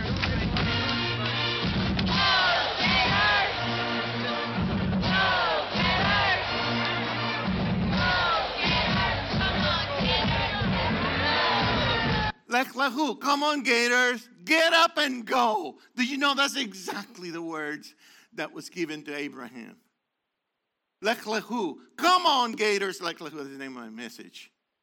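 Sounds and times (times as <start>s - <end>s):
stadium crowd chanting in unison in Gainesville: 0.2s - 12.4s
speech: 12.8s - 19.8s, 21.0s - 24.5s.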